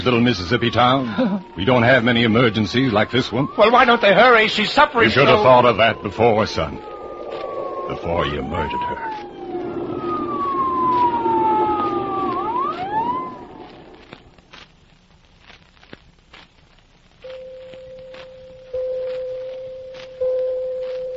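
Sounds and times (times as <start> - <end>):
speech: 0.0 - 6.9, 7.9 - 9.2
ambulance siren wailing: 0.0 - 14.2
steady sustained tone: 0.0 - 14.5, 17.2 - 21.1.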